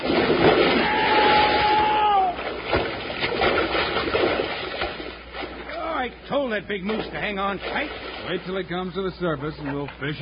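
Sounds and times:
logs crashing into lake water with churning splash: 0:00.0 - 0:06.0, 0:06.7 - 0:08.7
speech: 0:06.6 - 0:10.2.

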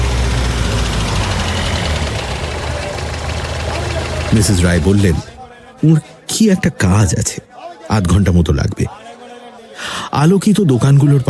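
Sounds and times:
car engine running as the car pulls into a market parking lot: 0:00.0 - 0:05.6
speech: 0:04.3 - 0:09.0, 0:09.8 - 0:11.2.

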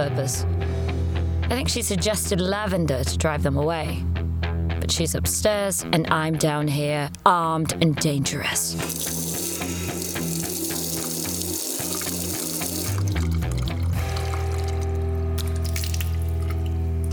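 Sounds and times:
speech: 0:00.0 - 0:00.9, 0:01.5 - 0:04.2, 0:04.8 - 0:09.2
tap water splashing into a sink: 0:08.8 - 0:17.1.

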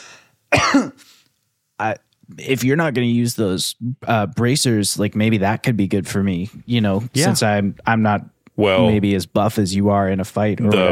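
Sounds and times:
rough throaty cough: 0:00.5 - 0:01.1
speech: 0:00.7 - 0:01.2, 0:01.8 - 0:10.9.

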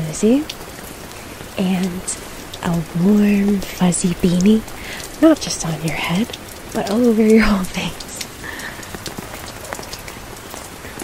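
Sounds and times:
steady rain pattering on an umbrella: 0:00.0 - 0:11.0
speech: 0:00.1 - 0:00.6, 0:01.6 - 0:08.1.

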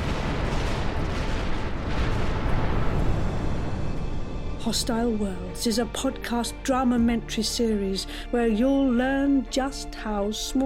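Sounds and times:
deep roaring blast of an exploding star: 0:00.0 - 0:05.6
speech: 0:04.7 - 0:10.6.

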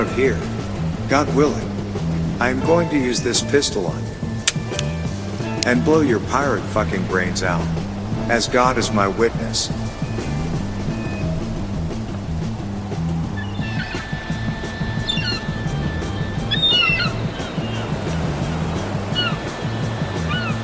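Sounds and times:
seagulls calling by the sea near land: 0:00.0 - 0:20.6
steady pulsing low rumble: 0:00.0 - 0:20.6
speech: 0:00.1 - 0:00.5, 0:01.1 - 0:01.7, 0:02.4 - 0:04.2, 0:05.6 - 0:09.8.

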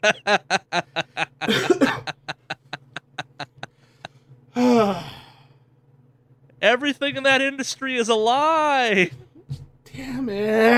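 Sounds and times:
speech: 0:00.0 - 0:01.8, 0:07.0 - 0:09.2, 0:10.0 - 0:10.7
laughter: 0:00.0 - 0:04.2
coughing fit of short hacking coughs: 0:01.4 - 0:03.4.

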